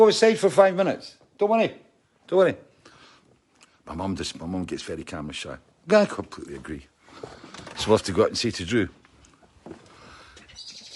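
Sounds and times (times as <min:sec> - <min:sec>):
speech: 0:00.0 - 0:02.7, 0:03.9 - 0:09.0
steady hiss: 0:00.0 - 0:10.9
birds chirping outdoors: 0:09.9 - 0:10.9.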